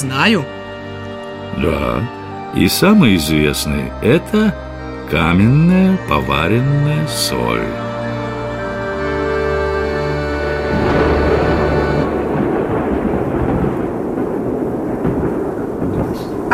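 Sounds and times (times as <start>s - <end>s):
speech: 0.0s - 0.6s, 1.6s - 7.9s
driving rain: 0.0s - 16.5s
rolling thunder: 10.4s - 16.5s
roaring storm wind: 10.7s - 16.5s.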